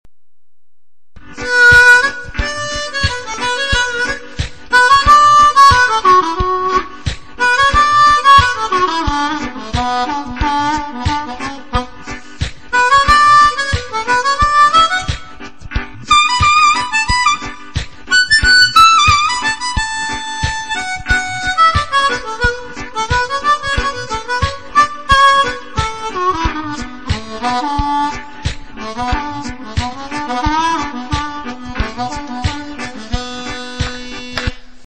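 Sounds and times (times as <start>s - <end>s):
harmonica playing a minor third: 1.2s - 34.8s.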